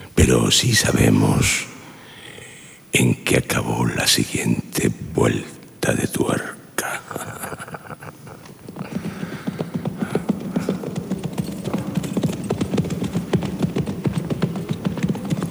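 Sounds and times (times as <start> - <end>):
speech: 0.2 - 1.7, 2.9 - 6.6
laughter: 6.9 - 9.0
horses galloping with three riders heading toward a village: 7.4 - 15.4.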